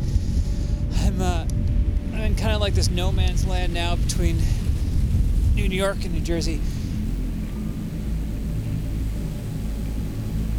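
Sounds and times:
strong wind on open water buffeting microphone: 0.0 - 10.5
person's voice: 0.9 - 1.5, 2.1 - 4.7, 5.6 - 6.8
speech: 2.5 - 4.6, 5.6 - 6.7.

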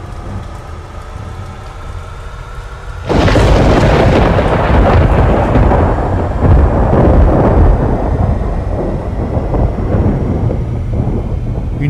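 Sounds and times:
thunder rumble during a storm: 0.0 - 11.8
thunder crack from lightning strike on a mountain top: 3.0 - 11.8.

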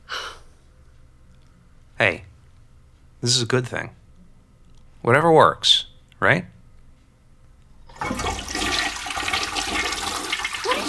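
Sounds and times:
speech: 2.0 - 2.3, 3.2 - 4.0, 5.0 - 6.5
toilet flushing with swirling water: 7.9 - 10.8.

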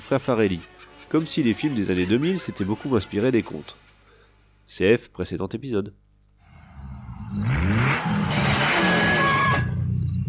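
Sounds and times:
speech: 0.1 - 3.8, 4.7 - 6.0
Ferrari sports car accelerating: 6.8 - 10.2.

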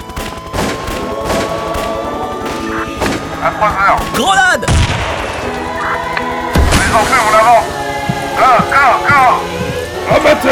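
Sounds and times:
gunfire bursts: 0.0 - 7.5
speech: 3.6 - 4.9, 6.9 - 7.8, 8.4 - 9.5, 10.1 - 10.5.

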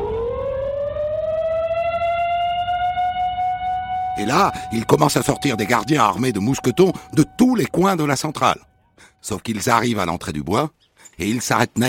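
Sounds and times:
prison alarm siren wailing: 0.0 - 8.9
low rumble: 3.3 - 8.8
speech: 4.2 - 11.8.

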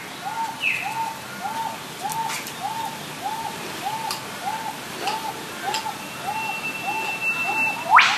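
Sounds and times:
hissing forest background: 0.0 - 8.1
soft arched bird calls: 0.0 - 8.1
bird long thin whistle and sharp rising whip-like crack: 6.8 - 8.1.

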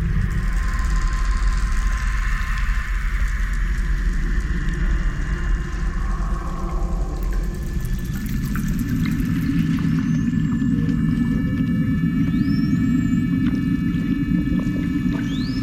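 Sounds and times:
steady low underwater rumble: 0.0 - 15.6
thin rising whistle-like seal calls underwater: 12.2 - 13.2, 15.2 - 15.6.

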